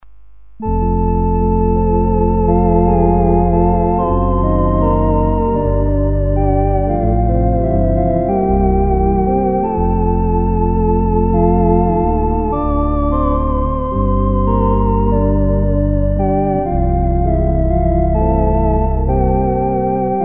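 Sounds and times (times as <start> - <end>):
organ playing a carol: 0.6 - 20.2.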